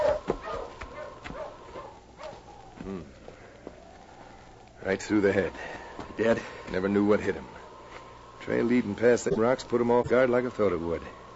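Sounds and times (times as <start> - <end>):
sled dog team barking and whimpering in the snow: 0.0 - 2.8
speech: 4.8 - 7.6, 8.4 - 11.2.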